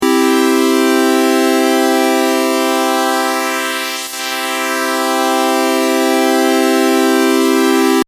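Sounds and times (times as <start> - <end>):
pulse width modulation synth tone: 0.0 - 8.0.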